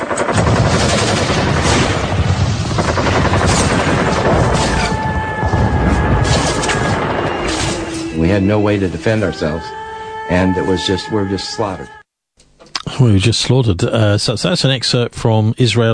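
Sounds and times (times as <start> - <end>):
machine gun fire: 0.0 - 8.1
heavy cannon booms: 0.2 - 8.2
high whistling tone: 4.8 - 12.0
speech: 8.3 - 12.0, 13.0 - 15.9.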